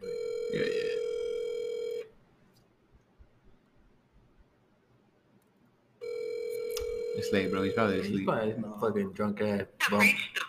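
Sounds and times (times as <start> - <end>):
outgoing telephone call ring tone: 0.0 - 2.1, 6.0 - 8.1
low hiss: 0.0 - 10.4
speech: 7.2 - 10.4.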